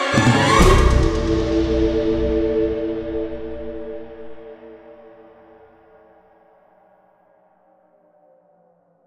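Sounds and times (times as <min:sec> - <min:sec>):
big riser stinger: 0:00.1 - 0:05.3.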